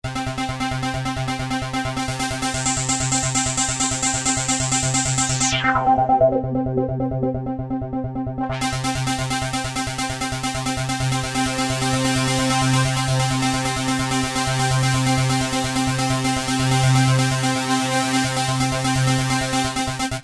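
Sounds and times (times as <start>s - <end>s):
gated arpeggio on Yamaha CS1x CS2x synthesizer: 0.2s - 20.1s.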